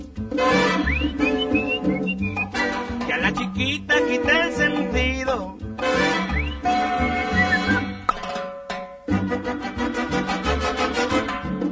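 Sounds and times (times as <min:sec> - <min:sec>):
steady musical accompaniment: 0:00.0 - 0:11.6
person whistling a short rising and gliding melody: 0:00.6 - 0:02.7, 0:06.2 - 0:07.9.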